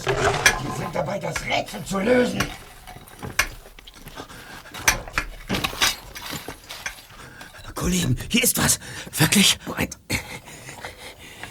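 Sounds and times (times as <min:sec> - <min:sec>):
chisel knocking and scraping while chiselling an air hole: 0:00.0 - 0:07.7
speech: 0:01.2 - 0:02.6, 0:07.8 - 0:10.0.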